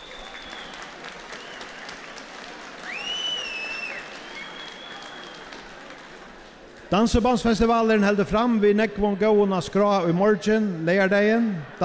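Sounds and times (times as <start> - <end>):
faint whistle: 0.0 - 1.9, 2.8 - 5.4
audience applause: 0.0 - 6.9
speech: 6.9 - 11.8.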